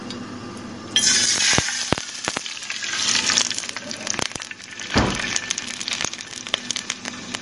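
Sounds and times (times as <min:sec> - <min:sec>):
flour-coated chicken pieces frying in hot oil in a pan over medium heat: 0:01.0 - 0:07.4.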